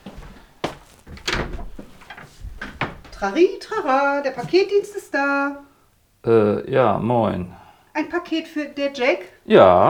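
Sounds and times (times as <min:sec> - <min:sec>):
clunks and scrapes: 0:00.0 - 0:03.3
loud thuds: 0:00.2 - 0:03.4
squeaky front door being opened: 0:01.0 - 0:03.4
speech: 0:03.2 - 0:09.8.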